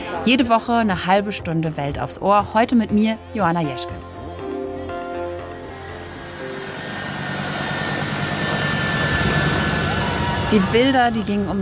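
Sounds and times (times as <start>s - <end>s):
speech: 0.2s - 4.1s, 10.5s - 11.5s
jet engines of an airplane taking off at the airport in Kabul Afghanistan: 5.4s - 11.5s.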